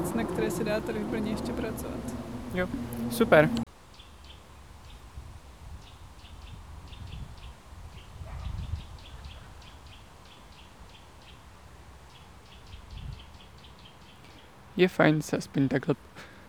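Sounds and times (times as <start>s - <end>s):
small birds chirping: 0.0s - 3.7s
wind moving through trees with gusts: 0.0s - 16.4s
speech: 0.2s - 3.6s, 14.8s - 16.3s.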